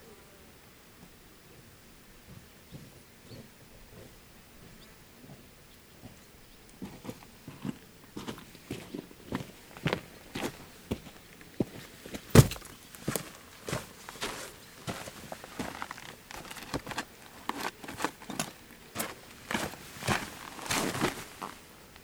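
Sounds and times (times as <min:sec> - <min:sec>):
footsteps during dismantling: 0:06.8 - 0:21.6.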